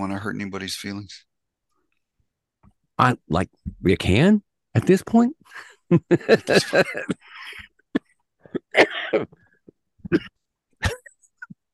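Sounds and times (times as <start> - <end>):
speech: 0.0 - 1.3, 3.0 - 7.3, 8.5 - 9.4, 10.1 - 11.0
laughter: 5.6 - 7.6
harsh raspy coughs: 6.8 - 11.5.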